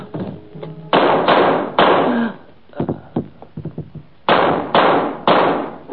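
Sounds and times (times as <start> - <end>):
gunshots: 0.9 - 2.3, 4.3 - 5.8.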